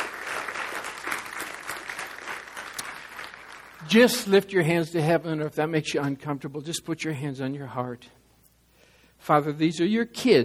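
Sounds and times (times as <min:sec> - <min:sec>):
large group of people applauding: 0:00.0 - 0:04.3
speech: 0:03.8 - 0:08.2, 0:09.3 - 0:10.4.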